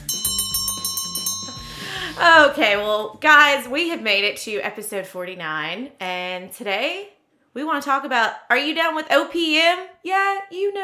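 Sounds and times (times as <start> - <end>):
opening bell ringing: 0.0 - 1.9
low tonal backing: 0.0 - 3.6
speech: 2.2 - 10.8.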